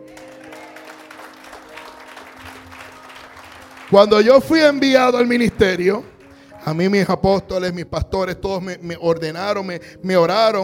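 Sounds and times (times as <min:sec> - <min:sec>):
crowd applauding: 0:00.0 - 0:06.9
speech: 0:03.9 - 0:10.6.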